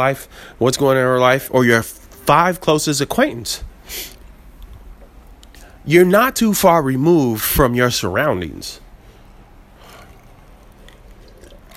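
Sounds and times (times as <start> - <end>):
speech: 0.0 - 4.2, 5.8 - 8.8
person sipping water: 9.1 - 11.7
swallowing water: 9.2 - 11.7
soft wet mouth noises: 9.7 - 11.7.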